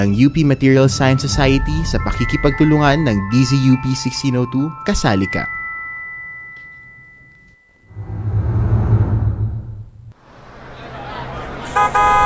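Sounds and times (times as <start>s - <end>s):
speech: 0.0s - 5.6s
jeepney engine rumbling as it pulls up: 1.0s - 4.3s, 7.9s - 12.2s
jeepney horn honking: 11.7s - 12.2s.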